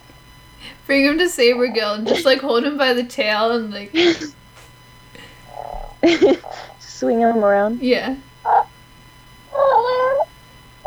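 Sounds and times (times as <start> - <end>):
laughter: 0.6 - 8.2
speech: 0.8 - 4.4, 6.0 - 8.6
cat meowing: 5.4 - 8.7, 9.5 - 10.3.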